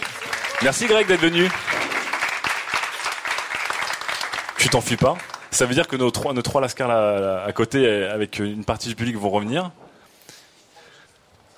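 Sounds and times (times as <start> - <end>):
audience applause: 0.0 - 5.8
speech: 0.6 - 1.7, 4.6 - 9.8.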